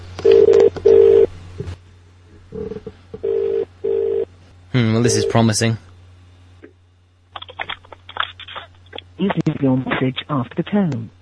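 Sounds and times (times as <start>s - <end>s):
telephone ringback tone through a phone earpiece: 0.2s - 1.3s, 3.2s - 4.3s
speech: 5.0s - 5.9s, 9.6s - 11.2s.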